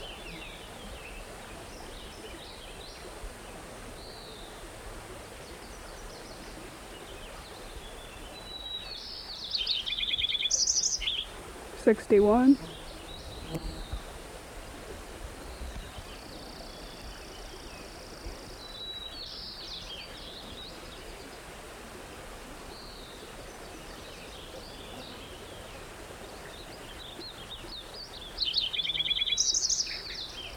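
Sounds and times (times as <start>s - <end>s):
steady hiss of outdoor noise: 0.0s - 30.5s
white-crowned sparrow singing whistled and trilled phrases: 9.5s - 11.3s, 28.4s - 30.5s
speech: 11.9s - 12.8s.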